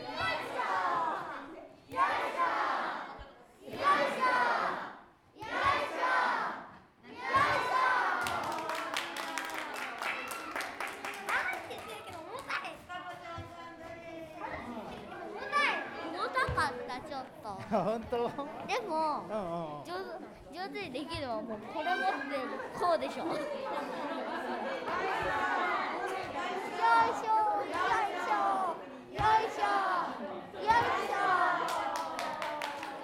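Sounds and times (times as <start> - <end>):
children chanting while pounding rice cakes: 0.0 - 8.6, 24.4 - 32.7
lively crowd chatter: 0.0 - 33.0
people clapping: 7.4 - 12.9, 30.7 - 33.0
laughter: 17.6 - 18.7, 22.1 - 26.0
speech: 18.0 - 25.8.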